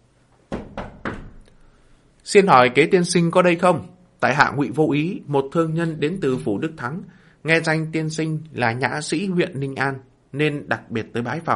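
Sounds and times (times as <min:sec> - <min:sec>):
heavy knocking on a courtyard door: 0:00.5 - 0:01.4
speech: 0:02.3 - 0:11.5.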